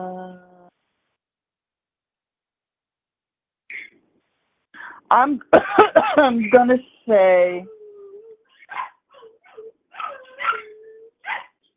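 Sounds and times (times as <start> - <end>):
speech: 5.1 - 7.8
small puppy whining squeakily: 7.7 - 11.7
small puppy barking while playing: 8.6 - 11.7.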